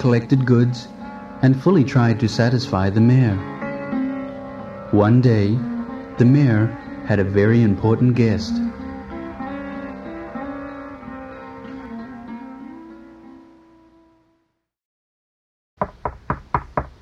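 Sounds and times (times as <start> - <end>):
speech: 0.0 - 3.5, 4.9 - 8.8
sustained musical tone with rich harmonics: 0.0 - 14.4
sharp knocks on a door: 15.8 - 17.0.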